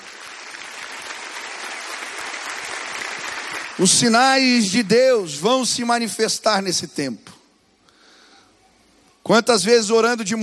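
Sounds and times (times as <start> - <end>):
congregation applauding: 0.0 - 5.1
speech: 3.8 - 7.4, 9.3 - 10.4.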